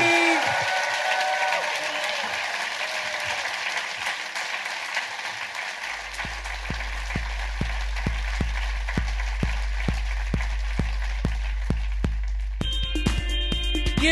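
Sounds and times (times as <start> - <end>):
large audience applauding for a guest: 0.0 - 12.6
steady rhythmic thumping beat: 6.1 - 14.0.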